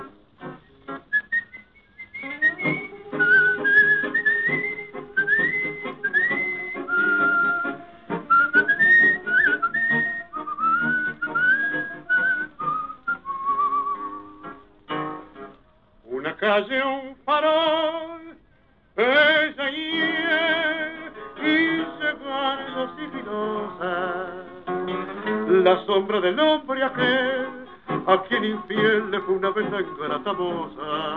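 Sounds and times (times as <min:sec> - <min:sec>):
soft steady instrumental backing: 0:00.0 - 0:16.6, 0:19.0 - 0:31.1
person whistling a flowing song melody: 0:01.1 - 0:14.6
speech: 0:29.8 - 0:31.1.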